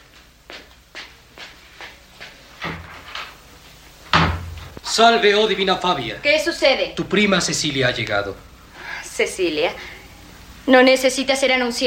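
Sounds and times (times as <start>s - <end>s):
soft footsteps approaching: 0.0s - 5.0s
wooden clunk of a door being opened: 4.1s - 4.8s
speech: 5.0s - 8.5s, 9.2s - 9.9s, 10.6s - 11.8s.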